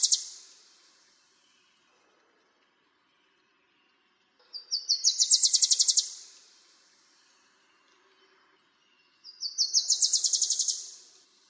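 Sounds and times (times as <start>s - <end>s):
bird trill: 0.0s - 0.5s, 4.6s - 6.3s, 9.3s - 11.1s.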